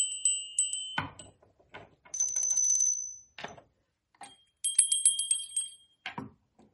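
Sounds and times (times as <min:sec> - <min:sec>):
small bells ringing: 0:00.0 - 0:01.4, 0:02.1 - 0:03.5, 0:04.2 - 0:06.1.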